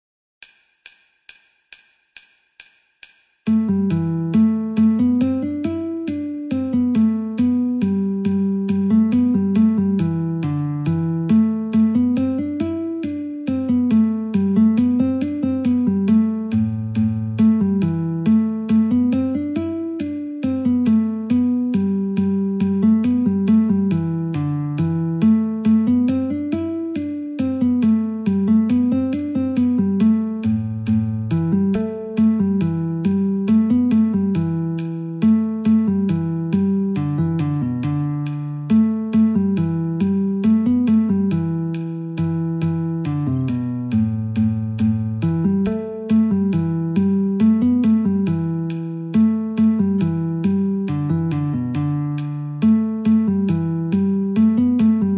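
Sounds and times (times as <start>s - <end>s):
guitar: 3.5s - 55.1s.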